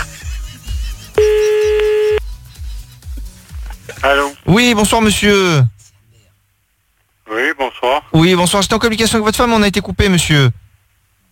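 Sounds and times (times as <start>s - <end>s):
regular low thumping beat: 1.2s - 2.2s
telephone dialing tone as a call is placed: 1.2s - 2.2s
speech: 4.0s - 5.7s, 7.8s - 10.7s.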